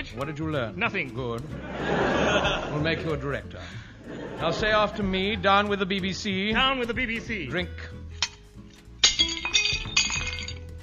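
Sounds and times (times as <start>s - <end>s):
speech: 0.1s - 8.0s
laughter: 1.5s - 5.8s
drinking glasses smashing in a fireplace: 8.2s - 10.8s
tinkling glass shards: 9.0s - 10.8s.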